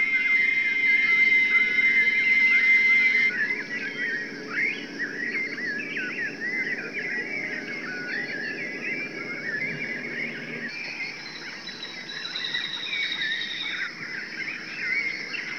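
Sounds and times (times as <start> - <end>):
busy flock of birds chattering: 0.0 - 15.5.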